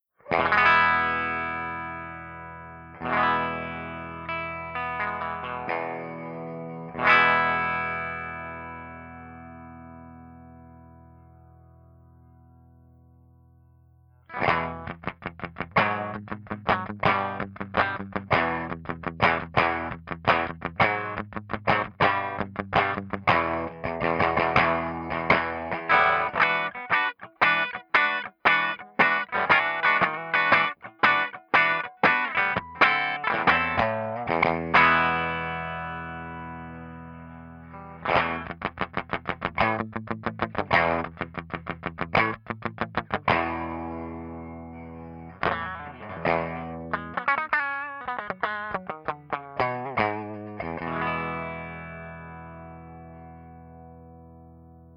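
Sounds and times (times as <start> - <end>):
Fender Twin amplifier on bright setting with humbucker guitar: 0.2 - 12.9, 14.3 - 54.9.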